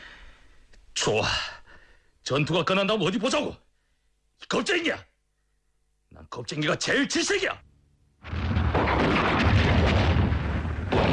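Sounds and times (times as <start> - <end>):
speech: 1.0 - 1.5, 2.3 - 3.6, 4.4 - 5.1, 6.1 - 8.4
tank shell exploding behind a mountain: 8.2 - 11.1.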